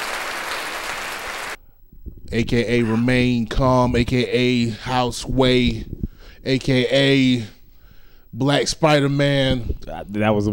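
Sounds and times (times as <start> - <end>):
audience applause for a guest: 0.0 - 1.6
speech: 2.3 - 7.6, 8.3 - 10.5.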